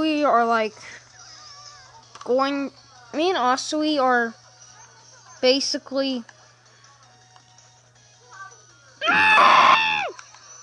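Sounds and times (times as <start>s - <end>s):
speech: 0.2s - 1.0s, 2.2s - 4.4s, 5.4s - 6.4s
person screaming: 9.0s - 10.1s.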